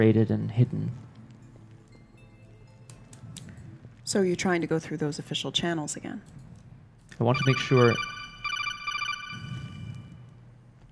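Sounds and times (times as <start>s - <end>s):
speech: 0.0s - 1.1s, 4.1s - 6.4s, 7.2s - 8.1s
phone electronic alert tone for incoming text message: 7.3s - 10.0s.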